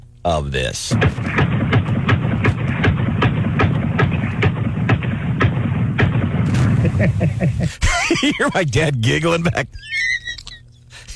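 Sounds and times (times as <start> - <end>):
speech: 0.2 - 1.5, 6.8 - 10.2
AR-15 rifle emptying a drum magazine: 0.9 - 7.6
laughter: 6.7 - 8.8.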